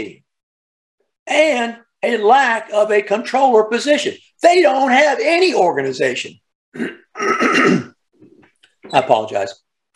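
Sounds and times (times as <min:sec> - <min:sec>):
speech: 0:00.0 - 0:00.2, 0:01.3 - 0:07.8, 0:08.9 - 0:09.6
person clearing throat: 0:06.7 - 0:08.0.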